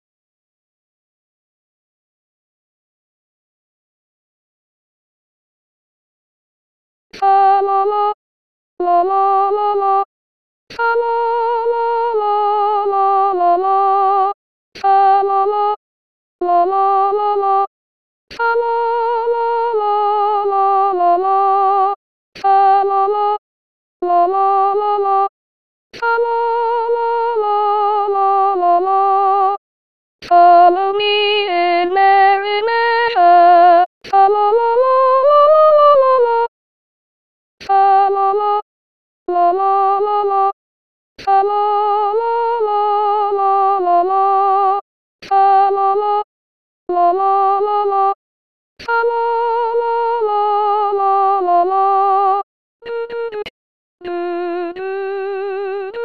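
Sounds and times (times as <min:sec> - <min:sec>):
soprano singing a Christmas carol: 0:07.2 - 0:08.2, 0:08.8 - 0:10.1, 0:10.7 - 0:15.8, 0:16.4 - 0:17.7, 0:18.3 - 0:23.4, 0:24.0 - 0:25.3, 0:26.0 - 0:29.6, 0:30.2 - 0:36.5, 0:37.7 - 0:38.7, 0:39.3 - 0:40.6, 0:41.2 - 0:46.3, 0:46.9 - 0:48.2, 0:48.8 - 0:56.0.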